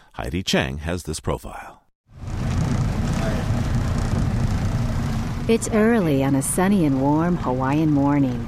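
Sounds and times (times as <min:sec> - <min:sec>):
speech: 0:00.2 - 0:01.8, 0:05.5 - 0:08.4
research boat engine motoring out of harbor: 0:02.1 - 0:08.4.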